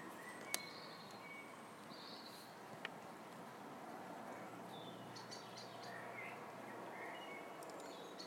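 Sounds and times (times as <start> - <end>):
blackbirds singing at dawn: 0.0 - 2.6, 4.2 - 8.2
steady hiss of quiet outdoor ambience: 0.0 - 8.2.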